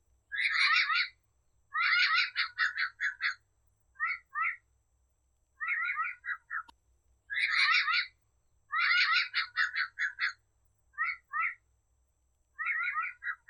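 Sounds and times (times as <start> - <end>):
yellow-naped parrot calling: 0.3 - 3.4, 4.0 - 4.6, 5.6 - 6.7, 7.3 - 10.4, 11.0 - 11.6, 12.6 - 13.4.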